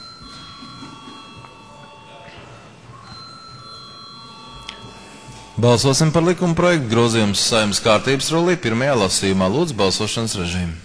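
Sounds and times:
electric bell ringing to call a vote in the Latvian parliament chamber: 0.0s - 8.5s
speech: 5.6s - 10.8s.

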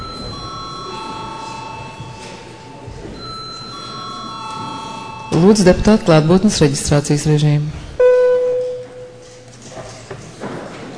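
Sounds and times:
electric chamber bell ringing in the Latvian parliament: 0.0s - 6.9s, 8.0s - 9.4s
faint murmur of room noise in the Latvian parliament: 0.0s - 10.9s
speech: 5.4s - 7.8s.

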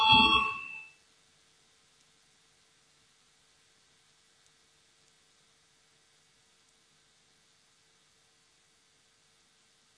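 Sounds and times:
voting bell ringing in a parliament chamber: 0.0s - 0.8s.

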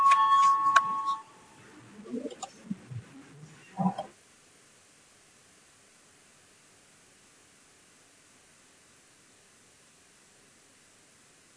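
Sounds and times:
electric parliament voting bell ringing: 0.0s - 1.3s.

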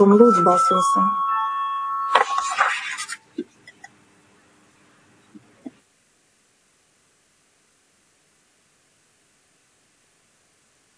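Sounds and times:
speech: 0.0s - 1.2s
bell rung in a parliament chamber to call a vote: 0.0s - 3.3s.

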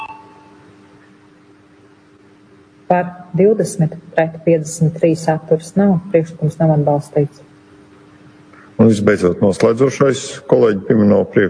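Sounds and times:
electronic bell tone calling a vote in a parliament chamber: 0.0s - 0.6s
speech: 2.9s - 7.5s, 8.8s - 11.4s.

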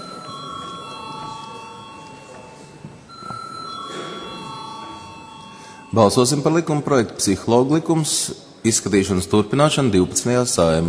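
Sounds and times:
chairman's electric bell ringing in a parliament chamber: 0.0s - 6.8s
speech: 5.9s - 10.8s.

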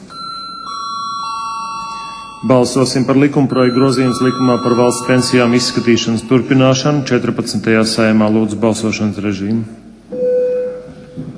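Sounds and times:
parliament voting bell ringing as a steady electronic tone: 0.1s - 7.4s
speech: 2.4s - 9.9s.

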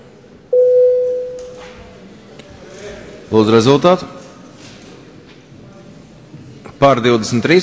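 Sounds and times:
parliament voting bell signal electronic tone: 0.5s - 1.6s
speech: 3.3s - 4.2s, 6.8s - 7.6s.

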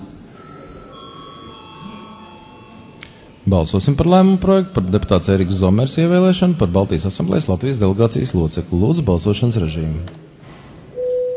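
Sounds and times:
low murmur: 0.0s - 10.4s
electric bell ringing to call a vote in a parliamentary chamber: 0.4s - 3.5s
speech: 3.5s - 10.2s.

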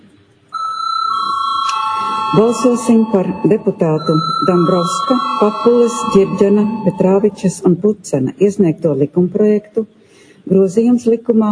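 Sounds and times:
chairman's electronic bell ringing to call a parliamentary vote: 0.6s - 7.8s
speech: 2.3s - 11.4s.

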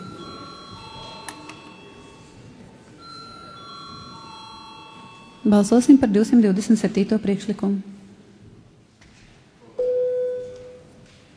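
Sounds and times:
electric bell ringing in a parliament chamber before a vote: 0.0s - 2.4s, 3.0s - 5.9s
murmur of a parliament chamber: 0.0s - 11.3s
speech: 5.5s - 7.9s.

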